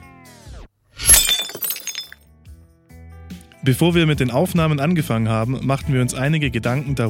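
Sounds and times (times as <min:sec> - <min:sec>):
glass shards tinkling: 0:01.0 - 0:02.2
glass thrown against wall and shattering: 0:01.0 - 0:02.2
speech: 0:03.6 - 0:07.0.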